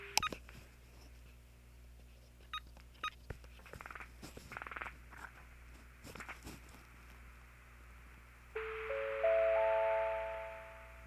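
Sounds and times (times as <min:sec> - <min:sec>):
steady electronic telephone tone: 0:08.6 - 0:10.9.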